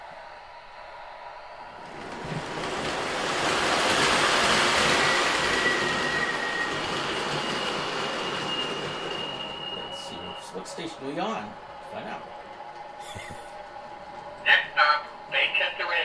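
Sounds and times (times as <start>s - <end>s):
model subway train running along its track: 1.8s - 13.0s, 13.6s - 16.0s
thin high wheel squeal of model subway train: 4.1s - 11.0s
speech: 11.0s - 12.3s.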